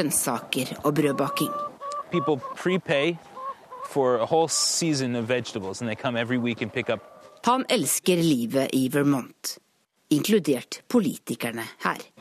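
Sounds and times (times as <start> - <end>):
hens clucking on a small egg farm in Vermont: 0.0 - 8.0
speech: 0.0 - 12.1.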